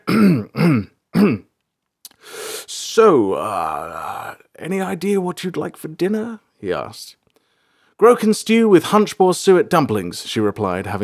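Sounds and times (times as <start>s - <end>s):
man clearing his throat: 0.0s - 1.5s
man's breathy rasping exhale: 2.1s - 2.7s
speech: 3.0s - 7.2s, 8.0s - 11.0s.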